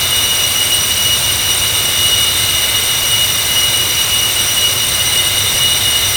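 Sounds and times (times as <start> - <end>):
TF34 GE100 turbine aircraft engine: 0.0 - 6.1.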